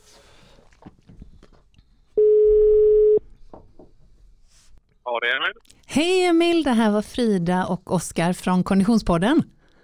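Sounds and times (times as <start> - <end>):
ringback tone of an outgoing telephone call: 2.2 - 3.2
speech: 5.4 - 9.5.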